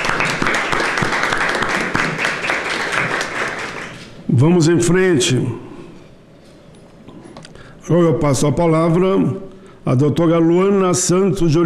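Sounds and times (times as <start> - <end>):
crowd applauding: 0.0 - 4.2
speech: 4.3 - 5.7, 7.9 - 11.6.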